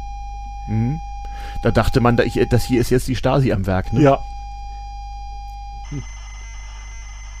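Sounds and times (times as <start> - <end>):
speech: 0.7 - 4.4, 5.9 - 6.2
modem-like data tones of computer code broadcast over radio: 0.7 - 4.5, 5.5 - 7.3.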